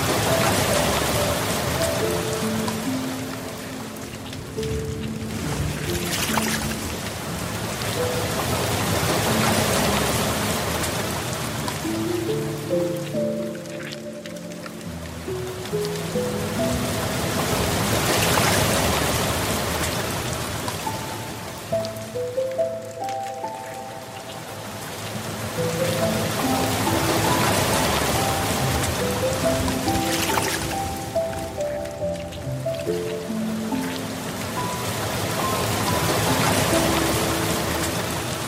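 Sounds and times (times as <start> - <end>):
gentle relaxing piano music: 0.0 - 38.4
soft steady water stream rushing: 0.0 - 38.4.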